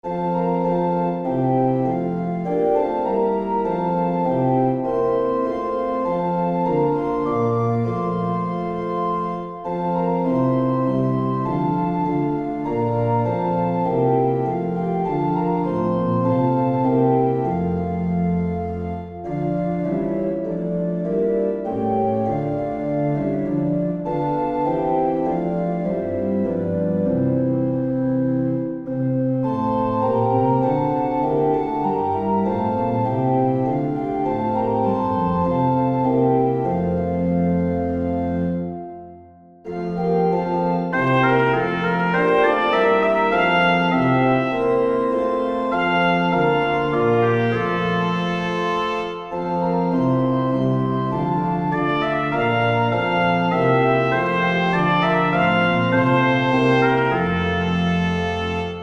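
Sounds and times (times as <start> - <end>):
organ: 0.0 - 58.8
trumpet descant: 40.9 - 49.9, 51.6 - 58.8.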